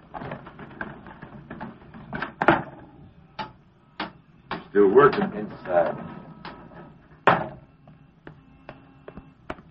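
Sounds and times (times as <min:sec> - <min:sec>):
loud garage door clunks: 0:00.1 - 0:07.6
speech: 0:04.8 - 0:06.2.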